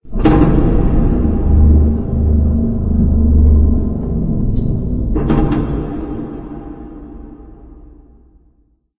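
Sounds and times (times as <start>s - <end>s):
warehouse ambience: 0.9s - 7.8s.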